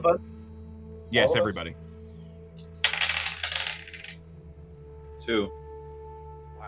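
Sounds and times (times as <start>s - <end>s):
speech: 0.0s - 0.4s, 1.1s - 1.9s, 5.3s - 5.6s
dice rolled for a perception check on a hard surface: 2.8s - 4.2s.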